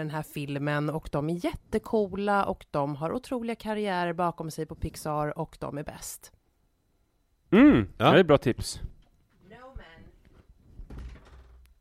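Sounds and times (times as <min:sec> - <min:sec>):
speech: 0:00.0 - 0:06.4, 0:07.5 - 0:08.9
faint room noise: 0:00.0 - 0:11.8
short vocal sound: 0:07.5 - 0:08.0
door pushed shut with a muffled solid thud: 0:10.8 - 0:11.7.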